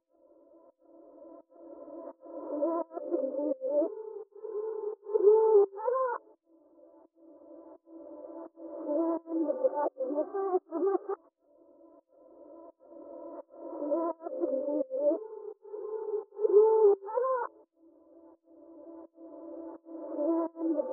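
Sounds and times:
reversed vocals loop in C minor at 170 BPM: 1.6s - 6.2s, 8.1s - 11.2s, 12.9s - 17.5s, 18.7s - 20.9s.

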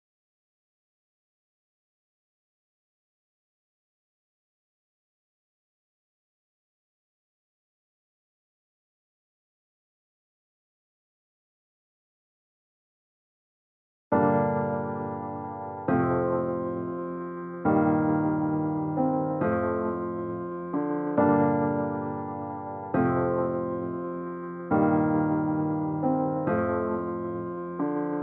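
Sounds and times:
G minor piano loop at 136 BPM: 14.2s - 28.2s.

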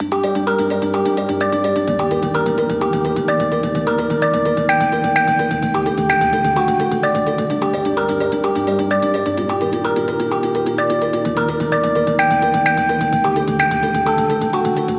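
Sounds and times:
future bass synth arpeggio loop in G sharp minor: 0.0s - 14.9s.

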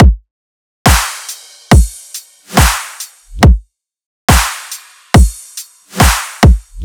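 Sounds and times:
riddim drum loop: 0.9s - 3.6s, 4.3s - 6.8s.

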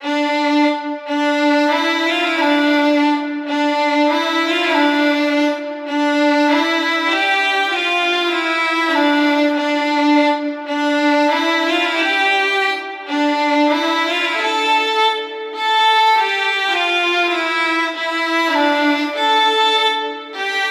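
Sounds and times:
solo violins playing in D minor: 0.0s - 20.7s.

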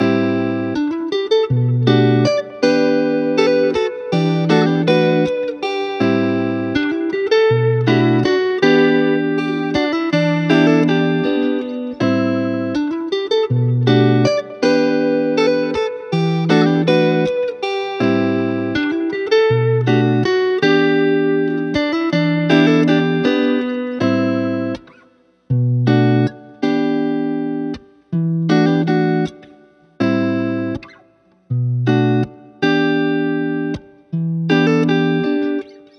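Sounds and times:
guitar loop in E minor: 0.0s - 35.9s.

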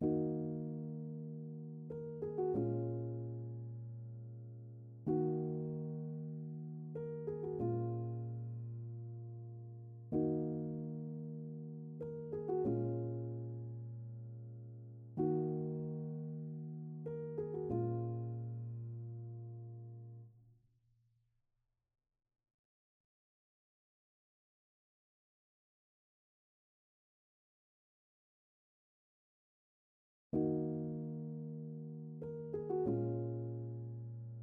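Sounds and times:
D sharp minor piano melody loop: 0.0s - 20.2s, 30.4s - 34.4s.

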